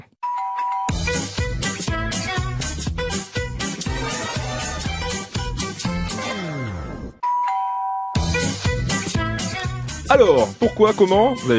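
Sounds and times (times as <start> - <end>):
two-tone doorbell chime: 0.2 - 1.0, 7.2 - 8.2
upbeat TV sitcom theme tune with full band: 0.9 - 7.3, 8.2 - 11.5
speech: 10.1 - 11.5.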